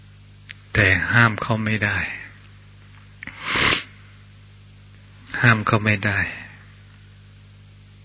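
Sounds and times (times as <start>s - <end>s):
speech: 0.9s - 2.2s, 5.4s - 6.4s
man sneezing: 3.3s - 4.0s.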